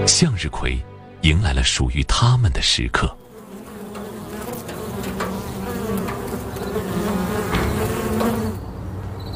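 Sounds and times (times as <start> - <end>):
speech: 0.1 - 3.2
bees buzzing in a sunflower field: 3.2 - 8.7.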